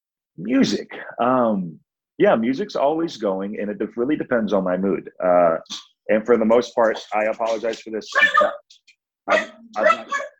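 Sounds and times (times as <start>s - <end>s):
speech: 0.4s - 10.3s
rescue dog barking: 8.2s - 8.6s, 9.3s - 10.3s.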